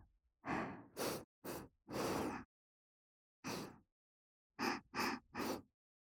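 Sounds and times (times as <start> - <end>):
deep breathing in through the nose: 0.5 - 2.5, 3.4 - 3.8, 4.6 - 5.7.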